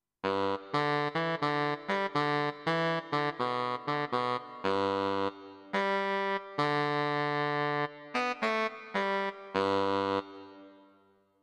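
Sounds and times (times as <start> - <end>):
baritone saxophone: 0.3 - 10.6.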